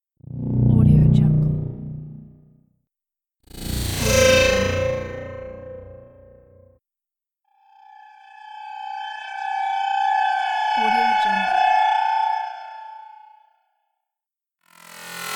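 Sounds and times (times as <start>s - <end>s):
sci-fi scanning sound: 0.2s - 2.4s, 3.5s - 6.7s, 7.8s - 13.4s.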